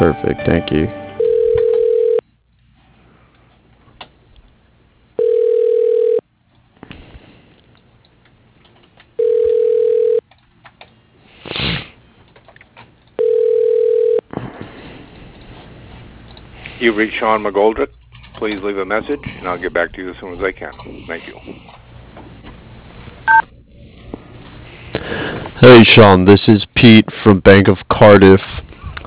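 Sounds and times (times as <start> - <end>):
speech: 0.0 - 1.0, 17.0 - 21.8, 25.6 - 28.5
telephone ringback tone while a call is transferred to voicemail: 1.1 - 2.2, 5.2 - 6.2, 9.2 - 10.2, 13.2 - 14.2.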